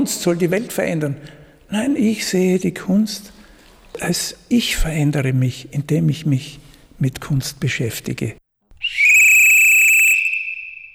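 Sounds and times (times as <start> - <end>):
speech: 0.0 - 3.4, 4.0 - 9.0
shrill whistle blast signalling the start of an event: 8.8 - 10.9.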